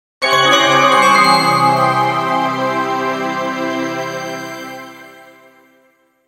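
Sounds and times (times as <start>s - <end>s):
shimmering bell chimes with delay effect: 0.2s - 5.4s.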